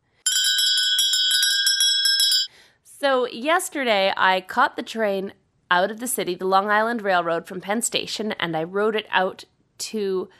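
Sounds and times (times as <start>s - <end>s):
small high-pitched bell rung quickly: 0.3s - 2.5s
speech: 3.0s - 10.3s.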